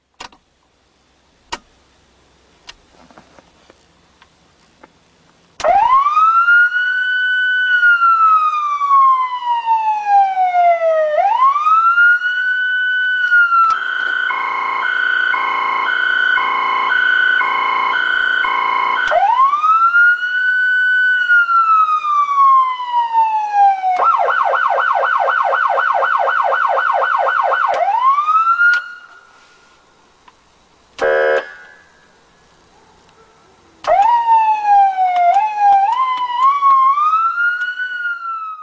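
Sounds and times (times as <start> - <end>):
Federal Signal Unitrol Omega 8001 siren: 5.6 - 29.3, 31.0 - 31.7, 33.8 - 38.6.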